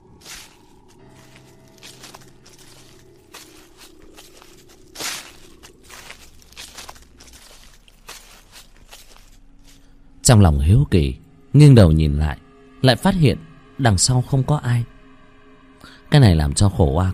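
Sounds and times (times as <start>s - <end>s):
footsteps on dry leaves: 0.0s - 9.9s
speech: 10.3s - 15.0s, 16.1s - 17.1s.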